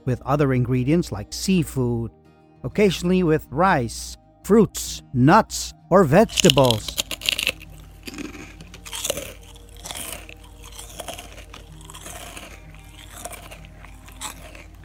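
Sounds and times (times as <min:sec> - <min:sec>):
speech: 0:00.0 - 0:07.1
starch-based krupuk cracker crunching as bitten and chewed: 0:06.2 - 0:14.8.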